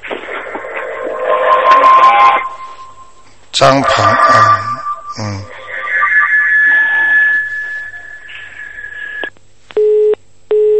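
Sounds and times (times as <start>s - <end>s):
thin steady high whine on a telephone line: 0.0s - 9.4s
speech: 3.6s - 5.5s
hissy telephone line noise: 3.8s - 10.7s.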